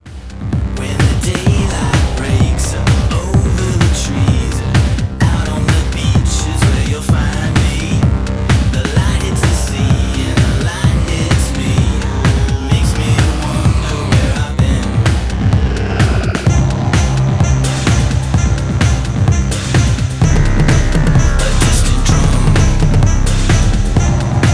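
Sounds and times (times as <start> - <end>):
distant drum: 0.1 - 24.5.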